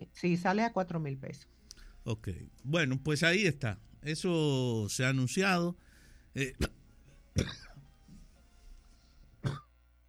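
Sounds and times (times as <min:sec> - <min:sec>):
speech: 0:00.2 - 0:06.8, 0:07.4 - 0:07.7
person coughing: 0:06.4 - 0:06.8, 0:07.4 - 0:07.8, 0:09.4 - 0:09.7.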